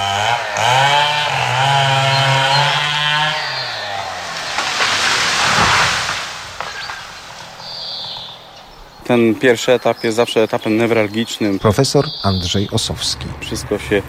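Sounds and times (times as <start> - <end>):
petrol chainsaw cutting trees: 0.0 - 8.6
speech: 9.1 - 14.0.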